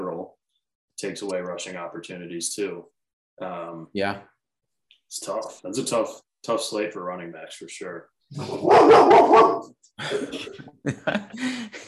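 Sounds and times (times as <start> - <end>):
speech: 1.0 - 4.3, 5.1 - 11.8
dog barking: 8.5 - 9.7
laughter: 10.0 - 11.8.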